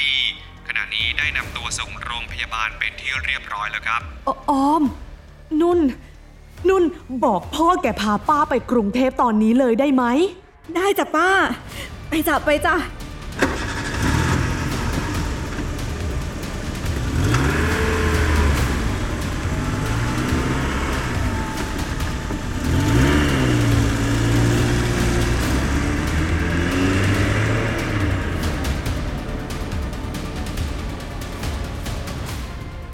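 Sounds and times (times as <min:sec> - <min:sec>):
speech: 0:01.0 - 0:13.0
car engine revving as car pulls away: 0:13.1 - 0:32.6.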